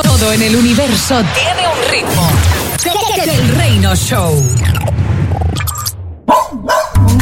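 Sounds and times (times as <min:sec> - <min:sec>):
speech: 0:00.2 - 0:05.0
dog barking: 0:06.3 - 0:07.1.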